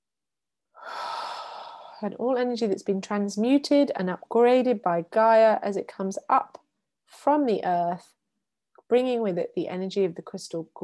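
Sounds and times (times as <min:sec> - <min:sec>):
deep breath in: 0:00.8 - 0:02.0
speech: 0:02.0 - 0:08.2, 0:08.9 - 0:10.8.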